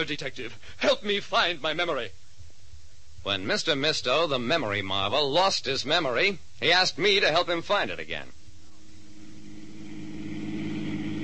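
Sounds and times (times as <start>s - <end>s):
speech: 0.0s - 2.2s, 3.2s - 8.4s
car engine while driving: 9.0s - 11.2s.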